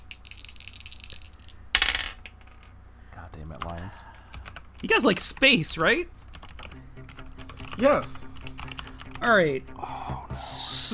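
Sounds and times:
dice clicking and rattling: 0:00.0 - 0:02.8
speech: 0:03.3 - 0:04.2, 0:04.8 - 0:06.2, 0:07.8 - 0:08.3, 0:09.2 - 0:10.9.

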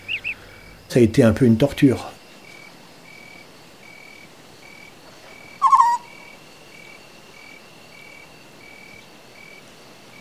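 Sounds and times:
scops owl hooting: 0:00.0 - 0:00.6, 0:04.0 - 0:08.1
speech: 0:00.9 - 0:02.1
faint steady high tone: 0:05.6 - 0:06.1.

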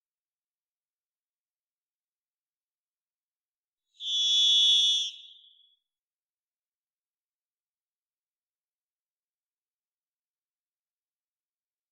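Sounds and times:
Varied thrush Ixoreus naevius song in Washington United States: 0:04.0 - 0:05.9.

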